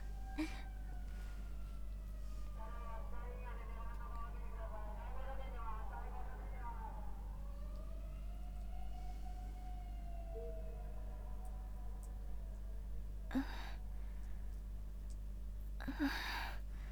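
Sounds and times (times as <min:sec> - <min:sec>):
ambulance siren wailing: 0:00.0 - 0:13.2
steady low electrical hum: 0:00.0 - 0:16.9.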